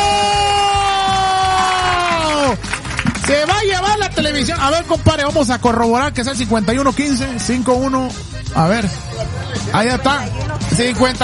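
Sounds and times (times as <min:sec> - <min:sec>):
long sustained whooping yell: 0:00.0 - 0:02.6
crowd cheering: 0:00.0 - 0:03.6
speech: 0:03.4 - 0:11.2.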